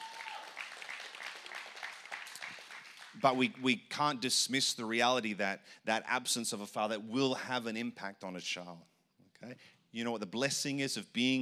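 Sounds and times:
audience clapping: 0:00.0 - 0:03.5
speech: 0:03.2 - 0:11.3.

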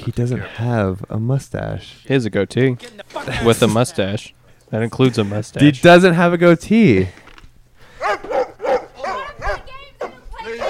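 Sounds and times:
speech: 0:00.0 - 0:07.2
dog barking and yelping: 0:08.0 - 0:10.6.

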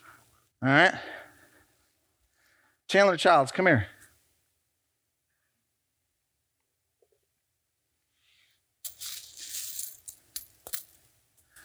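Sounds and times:
speech: 0:00.6 - 0:01.2, 0:02.9 - 0:04.0
quiet rustle: 0:08.3 - 0:11.6
handful of coins spilling and clinking: 0:08.9 - 0:11.6.

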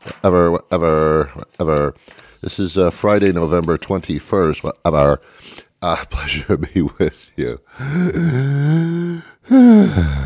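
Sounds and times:
speech: 0:00.2 - 0:10.2
heavy voiced breathing into the microphone with a groaning exhale: 0:02.0 - 0:02.4, 0:05.2 - 0:05.8, 0:07.7 - 0:10.2.

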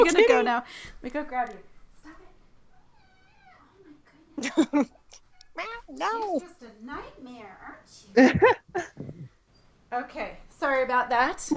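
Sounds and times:
speech: 0:00.0 - 0:02.2, 0:04.4 - 0:05.0, 0:05.6 - 0:09.2, 0:09.9 - 0:11.5
cat meowing while trying to throw herself out of a window: 0:05.4 - 0:06.4.

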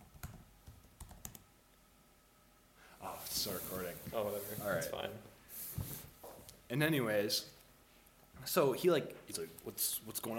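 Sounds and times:
typing on a computer keyboard: 0:00.1 - 0:01.4
speech: 0:03.2 - 0:05.9, 0:06.7 - 0:07.6, 0:08.4 - 0:10.3.

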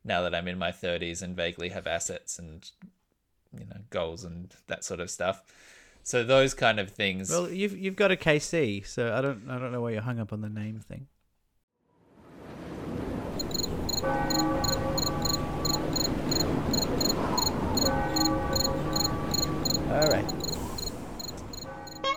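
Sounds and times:
speech: 0:00.1 - 0:02.9, 0:03.6 - 0:11.1
rhythmic cricket chirping: 0:13.4 - 0:22.1.

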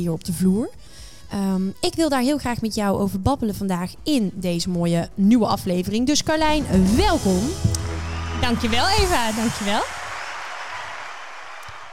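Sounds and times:
speech: 0:00.0 - 0:07.8, 0:08.4 - 0:10.0
crowd applause sound effect: 0:07.4 - 0:11.9.

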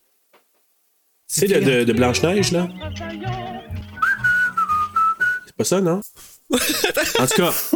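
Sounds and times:
speech: 0:01.3 - 0:03.8, 0:05.6 - 0:07.7
soft murmuring tonal sound: 0:01.3 - 0:05.4
person whistling a tune: 0:03.6 - 0:05.5
laughter: 0:06.5 - 0:07.7.

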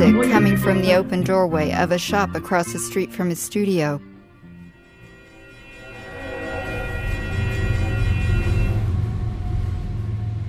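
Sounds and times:
speech: 0:00.0 - 0:04.1
train rumbling past: 0:04.5 - 0:10.4
railroad crossing bells ringing: 0:04.7 - 0:09.0.

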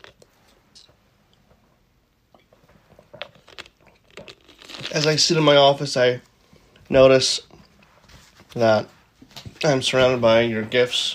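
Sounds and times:
sipping a soft drink: 0:02.3 - 0:05.2
speech: 0:04.9 - 0:06.3, 0:06.9 - 0:07.5, 0:08.6 - 0:09.0, 0:09.6 - 0:11.1.

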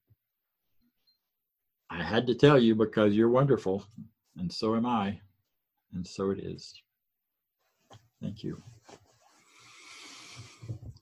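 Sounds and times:
speech: 0:02.1 - 0:05.3, 0:05.9 - 0:06.8, 0:07.9 - 0:09.0
big breath before a meditation: 0:09.4 - 0:10.8.

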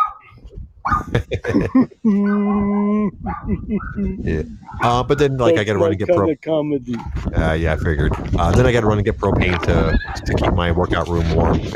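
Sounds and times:
dog barking in sharp yips: 0:00.0 - 0:01.1, 0:03.3 - 0:04.0, 0:09.5 - 0:10.2
laughter: 0:01.0 - 0:06.3
speech: 0:01.1 - 0:11.7
dog whining: 0:02.0 - 0:05.6.

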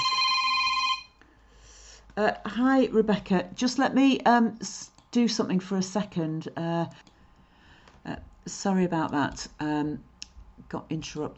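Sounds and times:
telephone ringing with electronic tone: 0:00.0 - 0:01.2
speech: 0:02.2 - 0:07.1, 0:08.0 - 0:11.3.

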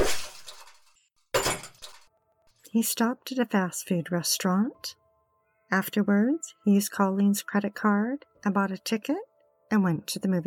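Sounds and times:
cell phones thrown to the ground and smashed: 0:00.0 - 0:00.8
speech: 0:02.7 - 0:05.0, 0:05.7 - 0:10.4.

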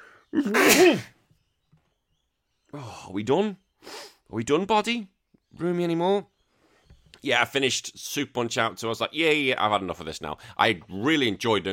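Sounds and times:
speech: 0:00.3 - 0:01.2, 0:02.7 - 0:06.3, 0:07.2 - 0:11.7
person sneezing: 0:00.4 - 0:01.2.

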